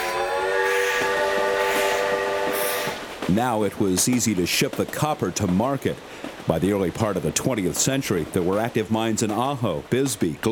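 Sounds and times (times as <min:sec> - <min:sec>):
steam train whistle: 0:00.0 - 0:03.1
steam train chugging: 0:00.0 - 0:10.4
speech: 0:03.3 - 0:10.4.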